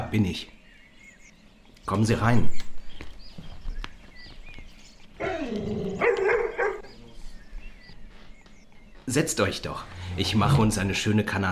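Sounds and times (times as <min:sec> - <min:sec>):
faint chirps: 0:00.0 - 0:11.3
speech: 0:00.1 - 0:00.6, 0:01.8 - 0:02.7, 0:09.1 - 0:11.5
dog barking: 0:05.2 - 0:07.0.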